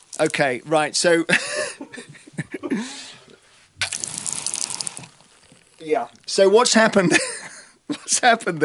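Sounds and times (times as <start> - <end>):
water poured and splashing against an untreated brick wall: 0.0 - 0.6, 3.8 - 6.3
speech: 0.2 - 3.2, 5.8 - 8.6.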